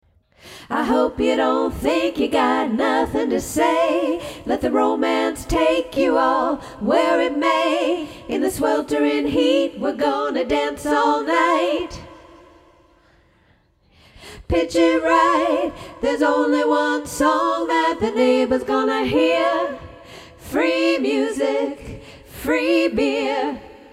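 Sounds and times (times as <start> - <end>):
background vocals: 0.3 - 23.9.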